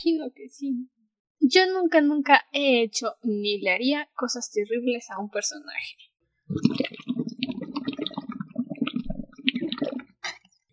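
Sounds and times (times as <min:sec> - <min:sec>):
speech: 0:00.0 - 0:07.0
person gulping water from a large glass: 0:06.5 - 0:10.6.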